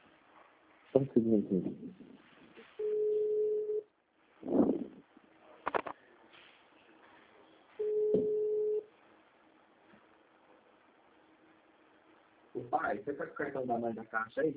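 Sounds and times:
speech: 1.0 - 2.2, 13.0 - 14.5
outgoing telephone call ringback tone: 2.8 - 3.8, 7.8 - 8.8.

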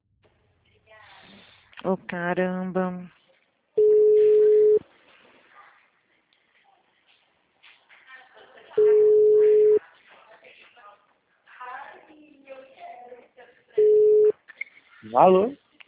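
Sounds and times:
speech: 1.8 - 3.2, 15.2 - 15.6
telephone busy tone after a dropped call: 3.8 - 4.8, 8.8 - 9.8, 13.8 - 14.3.

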